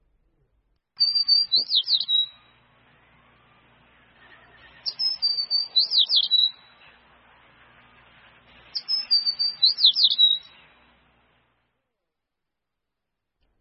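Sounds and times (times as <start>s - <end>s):
sparrow chirping: 1.0s - 2.7s, 4.1s - 10.8s
speech: 1.6s - 1.9s.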